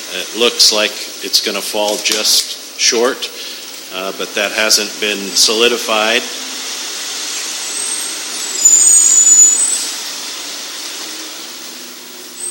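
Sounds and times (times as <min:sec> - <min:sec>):
fire engine passing with broadband roar: 0:00.0 - 0:12.4
speech: 0:00.1 - 0:06.4
thin high whine of fire engine: 0:03.9 - 0:12.4.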